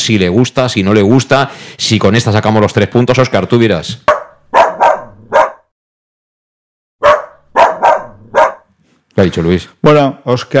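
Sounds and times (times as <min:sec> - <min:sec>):
speech: 0:00.0 - 0:04.2, 0:09.2 - 0:10.5
dog barking: 0:04.1 - 0:05.7, 0:07.0 - 0:08.7.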